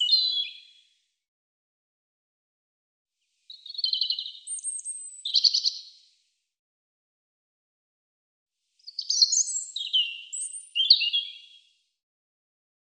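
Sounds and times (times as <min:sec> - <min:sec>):
European robin singing: 0:00.0 - 0:00.8, 0:03.5 - 0:06.0, 0:08.8 - 0:11.7.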